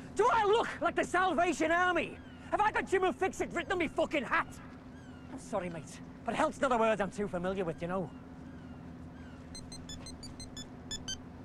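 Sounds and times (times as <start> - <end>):
speech: 0.5 - 4.7, 5.3 - 8.2
mobile phone ringtone of bright electronic beeps: 9.5 - 11.2.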